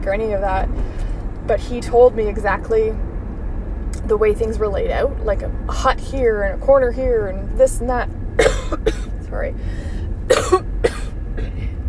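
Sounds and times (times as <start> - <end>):
speech: 0.0 - 3.1, 4.0 - 10.7
steady low rumble: 0.0 - 11.8
person coughing: 8.4 - 9.1, 10.3 - 11.7.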